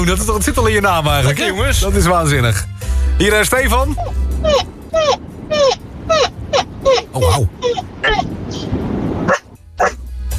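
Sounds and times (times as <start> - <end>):
speech: 0.0 - 6.3, 7.2 - 8.3
person imitating a puppy yapping: 4.0 - 10.0.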